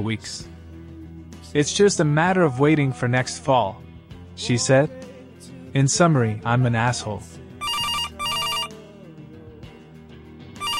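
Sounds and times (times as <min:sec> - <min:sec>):
speech: 0:00.0 - 0:00.5, 0:01.5 - 0:03.8, 0:04.4 - 0:07.4
telephone ringing with bright electronic warble: 0:07.6 - 0:08.7, 0:10.6 - 0:10.7.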